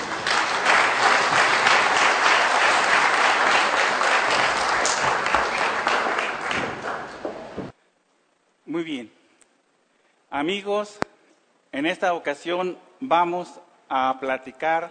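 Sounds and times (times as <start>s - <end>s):
crowd applauding: 0.0s - 7.6s
speech: 10.4s - 11.1s, 11.7s - 14.9s.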